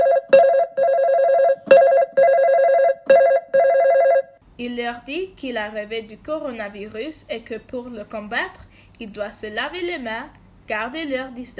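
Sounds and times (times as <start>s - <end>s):
telephone ringing with a warbling electronic tone: 0.0s - 4.4s
speech: 4.6s - 11.5s.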